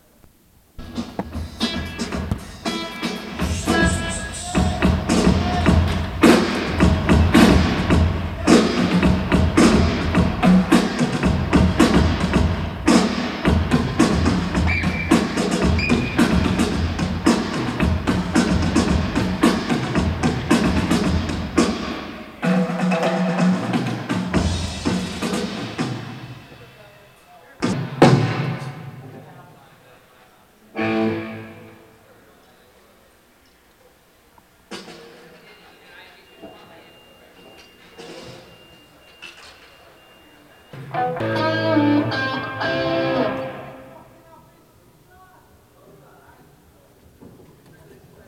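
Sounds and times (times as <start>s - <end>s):
drums at a soundcheck: 0.6s - 29.7s, 34.2s - 43.8s.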